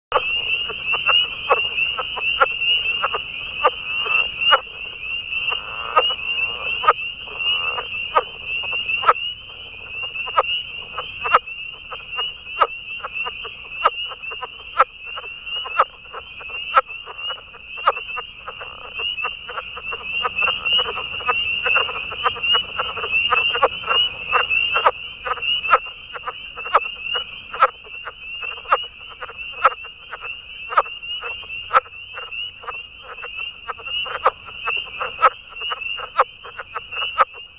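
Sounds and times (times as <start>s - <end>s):
Rana kauffeldi calling: 0.1s - 37.5s.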